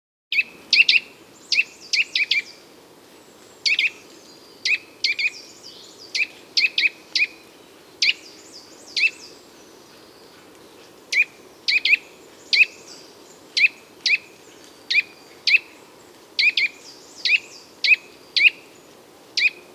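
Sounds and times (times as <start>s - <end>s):
nuthatch calling: 0.4s - 2.6s, 3.6s - 7.4s, 8.0s - 10.1s, 11.1s - 15.8s, 16.4s - 18.8s, 19.4s - 19.6s.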